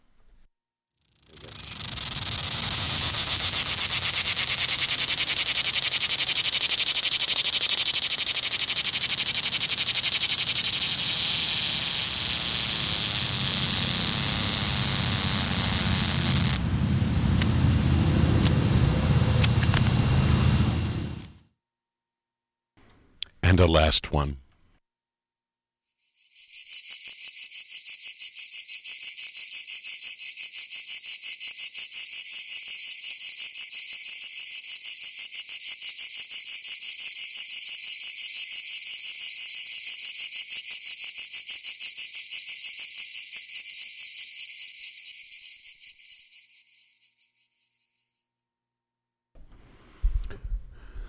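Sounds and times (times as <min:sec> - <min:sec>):
cicada buzzing: 0:01.0 - 0:16.6, 0:25.9 - 0:48.1
low rumble: 0:16.6 - 0:21.2
speech: 0:23.8 - 0:24.4.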